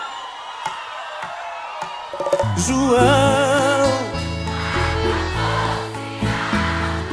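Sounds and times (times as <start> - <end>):
speech: 2.6 - 3.4
large crowd singing loudly together: 3.5 - 7.1.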